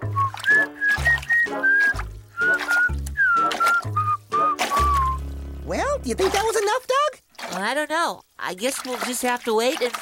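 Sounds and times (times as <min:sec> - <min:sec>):
person whistling a nursery rhyme tune: 0:00.0 - 0:05.3
low steady musical accompaniment: 0:00.0 - 0:06.7
speech: 0:06.1 - 0:06.9, 0:07.6 - 0:10.0.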